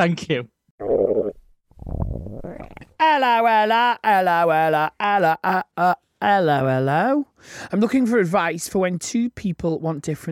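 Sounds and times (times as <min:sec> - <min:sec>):
speech: 0:00.0 - 0:01.0, 0:03.0 - 0:10.3
stomach rumbling: 0:00.8 - 0:03.0.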